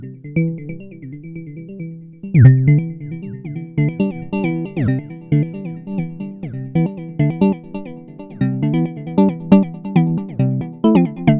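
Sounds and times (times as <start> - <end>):
oscillator tone: 0.5 - 11.3.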